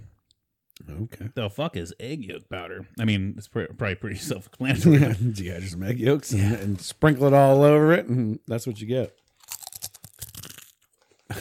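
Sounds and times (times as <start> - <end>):
speech: 0.8 - 9.2
Lay's potato chip bitten and chewed at the microphone: 9.1 - 11.2.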